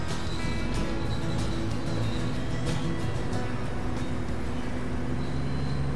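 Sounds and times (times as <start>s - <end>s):
KiHa 47 diesel railcar engine drone on the San'in Main Line: 0.0s - 5.9s
rhythmic track noise of a diesel railcar: 0.0s - 5.9s.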